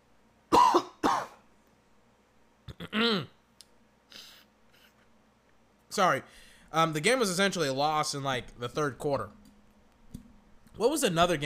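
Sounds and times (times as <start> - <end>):
harsh coughs: 0.5 - 1.4
voiced throat-clearing rasp: 2.7 - 3.4
speech: 6.0 - 9.4, 10.8 - 11.4.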